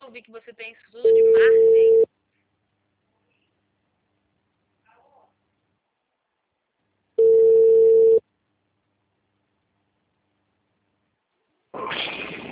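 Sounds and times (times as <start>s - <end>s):
speech: 0.1s - 2.2s
telephone tone after a dropped call: 1.0s - 2.1s, 7.2s - 8.2s
brief noise burst: 11.8s - 12.5s.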